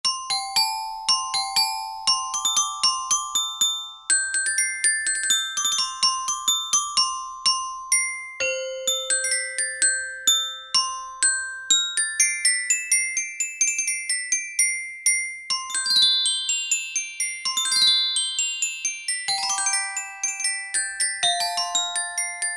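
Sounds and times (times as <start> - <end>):
glockenspiel from a Yamaha A4000 sampler: 0.0 - 22.5.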